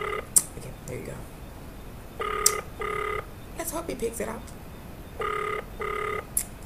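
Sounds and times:
phone ringback tone: 0.0s - 0.4s, 2.1s - 3.6s, 5.0s - 6.3s
faint noise: 0.0s - 6.6s
speech: 3.9s - 4.6s, 5.2s - 5.4s.

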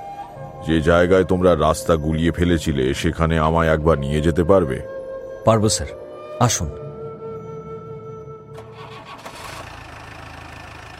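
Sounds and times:
speech: 0.6s - 6.8s
red-and-black jeep engine roaring as it drives off along a hilly mountain road: 8.5s - 10.9s.

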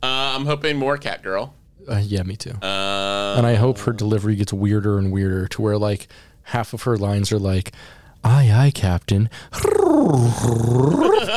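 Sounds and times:
speech: 0.4s - 11.3s
person imitating a cat's meow: 9.6s - 11.2s.

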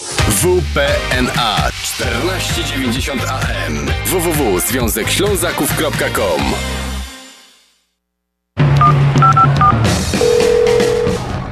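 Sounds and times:
speech: 0.3s - 6.9s
touch-tone telephone dialing beeps: 8.8s - 11.2s.

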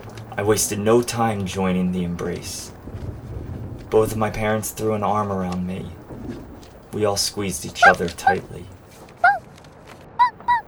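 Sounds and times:
speech: 0.4s - 2.8s, 3.9s - 8.8s
puppy yapping: 7.8s - 9.4s, 10.2s - 10.6s.

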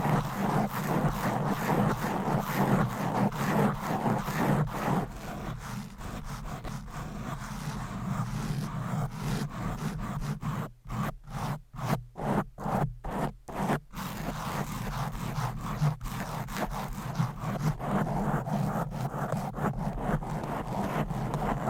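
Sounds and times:
fingernails scratching across a microphone cover: 0.0s - 21.6s.

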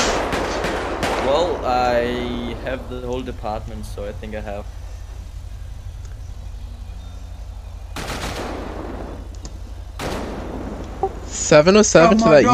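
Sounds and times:
gunfire in a police video game: 0.0s - 1.8s, 8.0s - 9.3s, 10.0s - 11.0s
steady low rumble: 0.0s - 12.5s
speech: 1.3s - 4.8s, 11.5s - 12.5s.

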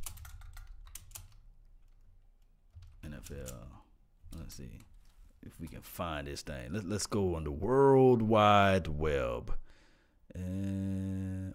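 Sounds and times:
typing on a computer keyboard: 0.0s - 2.1s, 2.7s - 3.7s
speech: 3.2s - 9.6s, 10.3s - 11.5s.

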